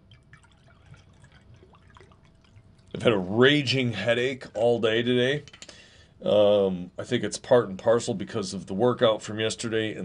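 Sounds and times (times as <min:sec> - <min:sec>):
drink pouring into a glass: 0:00.0 - 0:03.0
speech: 0:03.0 - 0:05.6, 0:06.2 - 0:10.0.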